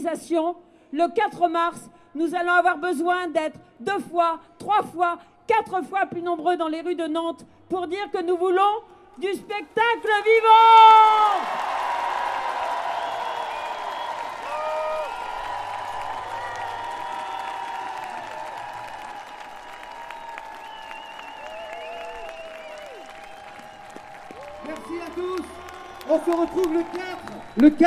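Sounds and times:
speech: 0.0 - 11.8, 26.3 - 27.0, 27.6 - 27.8
large outdoor street crowd applauding at a rally: 9.9 - 27.8.

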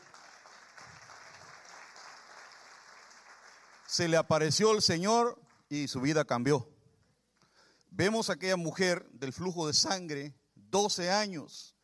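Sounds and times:
audience applauding in a reverberant room: 0.0 - 4.1
speech: 3.9 - 6.7, 8.0 - 11.8.

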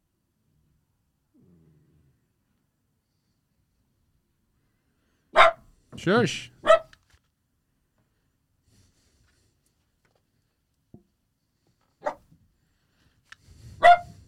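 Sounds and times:
dog barking: 5.3 - 5.7, 6.6 - 7.0, 12.0 - 12.3, 13.8 - 14.2
dog yip: 5.4 - 5.6, 6.6 - 7.0, 12.0 - 12.3, 13.8 - 14.2
speech: 6.0 - 6.5.

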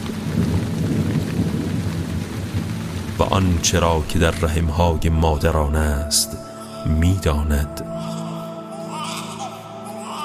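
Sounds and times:
deep thunder rumbling: 0.0 - 6.2
heavy rain: 0.0 - 10.2
speech: 3.2 - 8.2.

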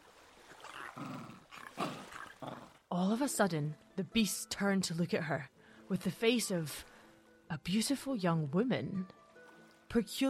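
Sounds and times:
soft hesitant animal growl: 0.6 - 2.8
speech: 1.0 - 1.4, 3.0 - 6.9, 7.5 - 9.2, 9.9 - 10.2.

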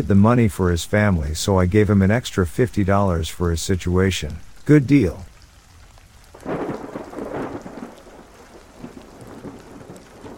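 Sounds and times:
speech: 0.0 - 5.3
steady hissing rain: 0.0 - 10.3
rumbling roll of thunder: 6.3 - 10.3.

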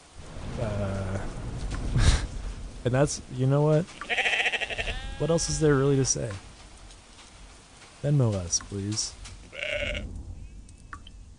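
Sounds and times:
sheep rustling through leaves: 0.0 - 11.3
speech: 2.8 - 4.1, 5.2 - 6.5, 8.0 - 9.2
angry sheep bleating harshly: 4.0 - 5.8, 9.5 - 10.0.

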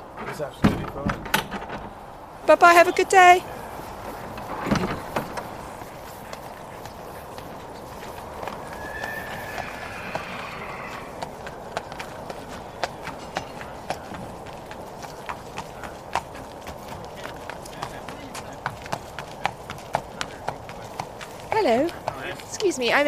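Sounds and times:
hooves of a horse led on a rope clip-clopping outdoors: 0.0 - 23.0
loud thump: 0.2 - 2.0
speech: 0.4 - 1.4, 2.4 - 3.5, 22.8 - 23.0.

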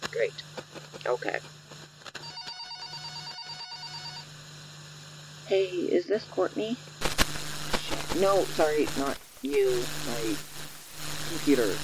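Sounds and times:
speech: 0.2 - 1.6, 5.5 - 7.0, 8.1 - 10.5, 11.3 - 11.8
electronic phone ring in warbling pulses: 2.2 - 4.3.

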